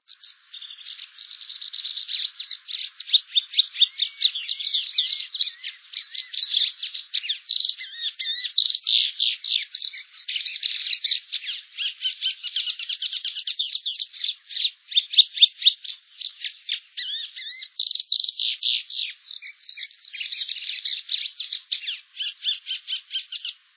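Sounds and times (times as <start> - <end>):
patativa-verdadeira singing: 0.0 - 23.7.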